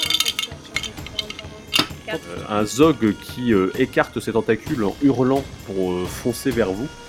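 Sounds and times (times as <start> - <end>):
dice rattling and clattering across a hard tabletop in a tabletop game: 0.0 - 1.4
speech: 2.1 - 7.0.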